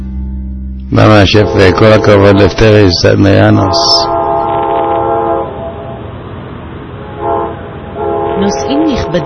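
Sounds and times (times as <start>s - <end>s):
speech: 0.9s - 4.1s, 8.5s - 9.2s
train rumbling at a station: 0.9s - 9.2s
train horn blasts at a station: 1.0s - 2.5s, 3.3s - 6.1s, 7.0s - 9.2s.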